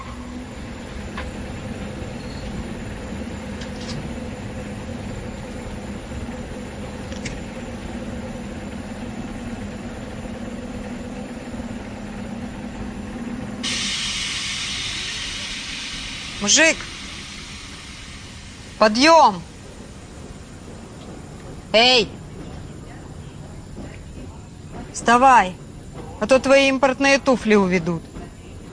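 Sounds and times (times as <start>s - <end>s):
low hum at a railway station: 0.0s - 26.6s
steam hiss at a railway station: 12.8s - 21.0s
speech: 16.4s - 16.9s, 18.8s - 19.5s, 21.7s - 22.2s, 25.0s - 25.6s, 26.2s - 28.1s.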